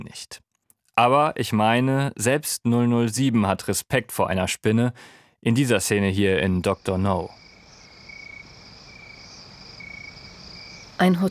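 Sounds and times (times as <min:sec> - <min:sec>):
speech: 0:00.1 - 0:00.4, 0:01.0 - 0:07.4, 0:11.0 - 0:11.2
crickets chirping on a very hot moonlit night at a hotel room in Jamaica: 0:05.7 - 0:11.2.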